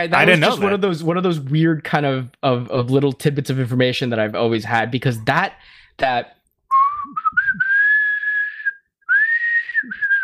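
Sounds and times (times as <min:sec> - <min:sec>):
speech: 0:00.0 - 0:06.4
person whistling a haunting tune from a TV soundtrack: 0:06.7 - 0:10.2.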